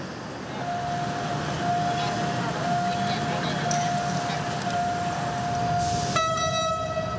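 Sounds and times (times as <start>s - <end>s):
freight train rumbling past a level crossing: 0.0s - 7.1s
high level crossing warning tone: 0.6s - 7.1s
loud train horn: 5.9s - 7.1s.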